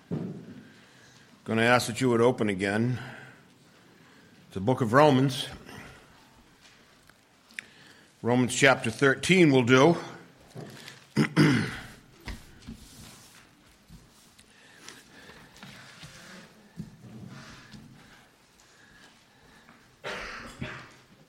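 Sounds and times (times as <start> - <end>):
speech: 1.5 - 3.2, 4.5 - 5.7, 8.2 - 11.4
person coughing: 11.2 - 12.0, 20.0 - 21.1
throat clearing: 11.2 - 12.0, 20.0 - 21.1.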